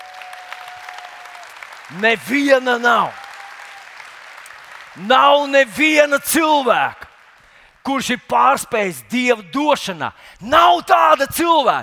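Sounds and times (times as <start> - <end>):
large group applauding: 0.0 - 5.7
speech: 1.9 - 3.2, 5.0 - 7.0, 7.8 - 11.8.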